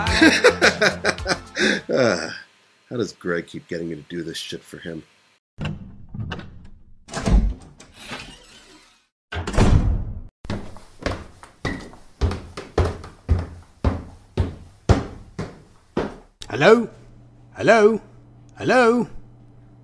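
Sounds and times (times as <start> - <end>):
laughter: 0.1 - 2.3
speech: 0.2 - 1.1, 2.9 - 5.7, 16.6 - 19.2
door opening with heavy thunks: 5.6 - 10.0
repeated knocking thuds: 10.5 - 16.3.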